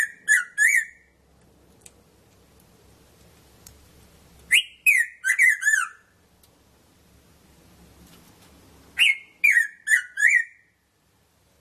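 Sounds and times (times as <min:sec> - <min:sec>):
red-throated parrotfinch calls: 0:00.0 - 0:01.1, 0:04.5 - 0:06.1, 0:09.0 - 0:10.7.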